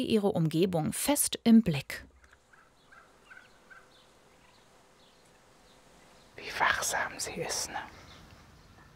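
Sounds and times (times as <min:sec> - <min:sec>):
speech: 0:00.0 - 0:02.1, 0:06.4 - 0:08.0
foster turkey hen clucking softly to lure her chicks in Köhlau: 0:02.1 - 0:05.5.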